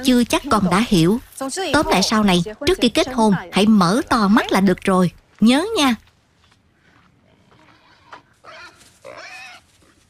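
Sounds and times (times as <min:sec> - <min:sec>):
speech: 0:00.0 - 0:06.1
wild boar grunting: 0:06.8 - 0:10.0.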